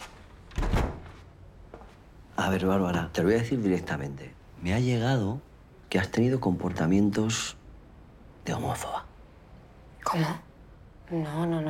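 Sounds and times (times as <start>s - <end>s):
door shutting: 0.5s - 1.2s
speech: 2.4s - 7.6s, 8.4s - 9.1s, 10.1s - 10.5s, 11.1s - 11.6s.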